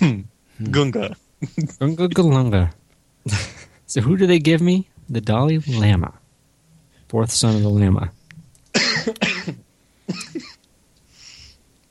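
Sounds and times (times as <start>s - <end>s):
speech: 0.6s - 6.2s, 7.1s - 8.2s
person coughing harshly: 8.7s - 10.6s
faint breathy exhale: 11.1s - 11.6s.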